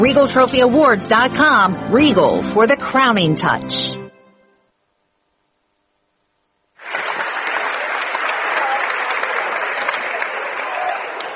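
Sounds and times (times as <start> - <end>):
speech: 0.0 - 4.0
crowd applauding at an evening high school game: 6.8 - 11.3.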